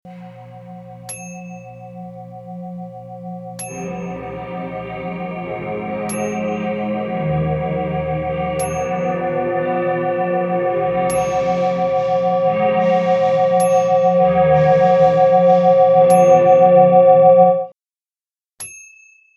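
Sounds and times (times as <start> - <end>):
old school sci-fi sound: 0.1 - 17.7.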